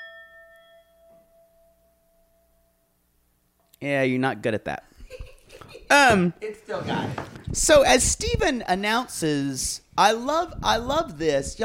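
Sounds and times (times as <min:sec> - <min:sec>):
Tibetan singing bowl being struck: 0:00.0 - 0:03.0
speech: 0:03.8 - 0:04.9, 0:05.9 - 0:11.6.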